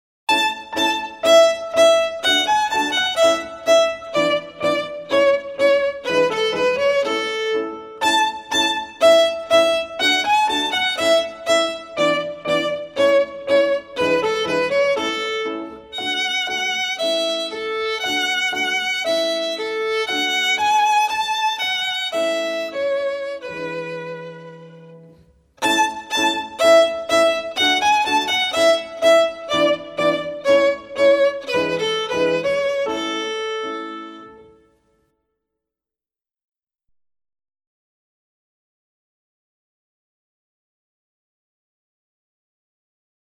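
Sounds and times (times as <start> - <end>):
violin piece: 0.3 - 34.7.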